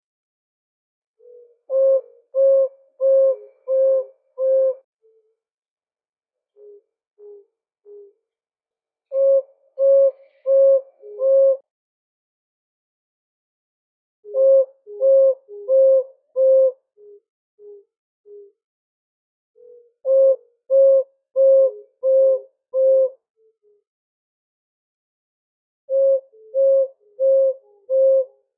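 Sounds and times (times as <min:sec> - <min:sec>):
Mayotte scops owl hooting on Mayotte: 0:01.2 - 0:05.3, 0:06.6 - 0:08.2, 0:09.1 - 0:11.6, 0:14.2 - 0:18.6, 0:19.6 - 0:23.8, 0:25.9 - 0:28.5.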